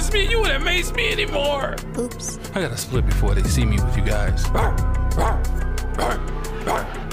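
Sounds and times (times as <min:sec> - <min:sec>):
speech: 0:00.1 - 0:06.8
dog barking in sharp bursts: 0:04.5 - 0:07.0
dog yipping: 0:04.6 - 0:05.5.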